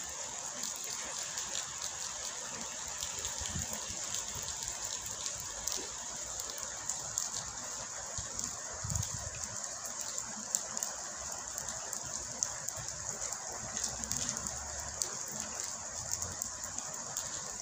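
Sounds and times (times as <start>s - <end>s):
steady dense rain hissing: 0.0s - 17.5s.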